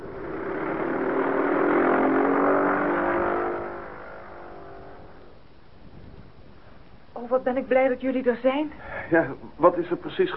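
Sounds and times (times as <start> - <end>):
aircraft engine roaring at full throttle: 0.0 - 5.4
speech: 7.3 - 10.3.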